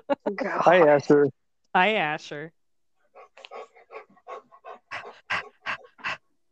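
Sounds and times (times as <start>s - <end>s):
speech: 0.4s - 2.6s
dog panting rapidly: 3.1s - 6.3s.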